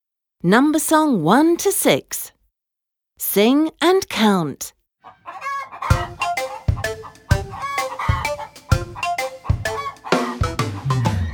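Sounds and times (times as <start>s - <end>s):
speech: 0.4s - 2.4s, 3.2s - 5.4s
hen clucking: 5.0s - 11.3s
higher chirps: 5.8s - 11.3s
bouncy rhythmic music backing: 5.9s - 11.3s.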